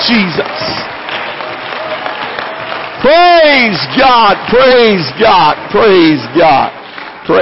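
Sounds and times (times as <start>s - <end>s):
church audience applause during a worship service: 0.0s - 7.3s
speech: 0.1s - 0.9s, 3.0s - 7.3s.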